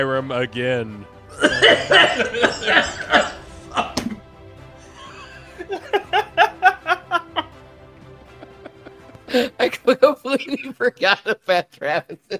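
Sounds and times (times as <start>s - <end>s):
speech: 0.0s - 3.9s, 9.3s - 12.3s
harsh coughing fit of rapid hacking bursts: 1.3s - 4.2s
laughter: 1.4s - 4.2s, 4.8s - 11.5s.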